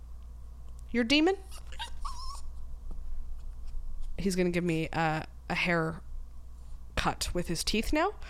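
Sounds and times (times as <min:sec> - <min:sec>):
low hum: 0:00.0 - 0:08.2
speech: 0:00.9 - 0:01.6, 0:04.2 - 0:06.1, 0:07.0 - 0:08.2
dog whimpering: 0:01.4 - 0:02.5.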